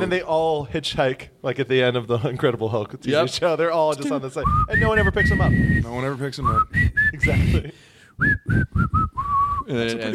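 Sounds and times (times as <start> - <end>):
speech: 0.0 - 10.1
person whistling a short breathy tune: 4.4 - 7.6, 8.2 - 9.7.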